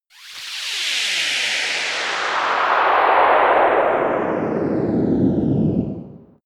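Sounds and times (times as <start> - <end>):
rocket passing in space: 0.1 - 6.3.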